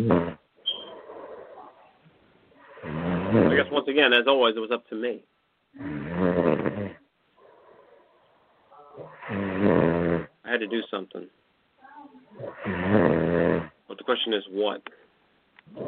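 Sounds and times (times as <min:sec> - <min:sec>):
dog snoring: 0:00.0 - 0:01.8, 0:02.6 - 0:03.8, 0:05.8 - 0:08.2, 0:09.0 - 0:10.4, 0:12.4 - 0:13.8, 0:15.7 - 0:15.8
speech: 0:03.9 - 0:05.9, 0:10.6 - 0:11.4, 0:12.4 - 0:15.0, 0:15.7 - 0:15.8.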